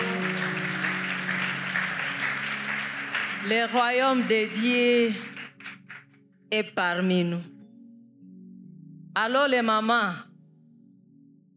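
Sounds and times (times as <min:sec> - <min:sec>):
congregation applauding during a church service: 0:00.0 - 0:06.2
speech: 0:03.4 - 0:05.3, 0:06.5 - 0:07.5, 0:09.2 - 0:10.3.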